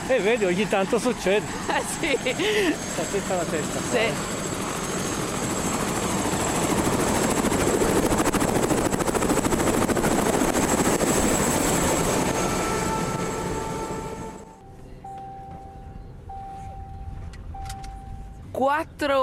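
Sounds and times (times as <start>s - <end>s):
helicopter roar with rotor throb: 0.0s - 14.6s
speech: 0.1s - 4.4s, 18.7s - 19.2s
faint beeping tones: 13.2s - 18.6s.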